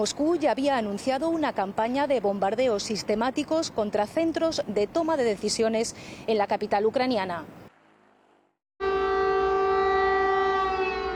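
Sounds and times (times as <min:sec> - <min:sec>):
speech: 0:00.0 - 0:07.6
air raid siren wailing: 0:08.8 - 0:11.1.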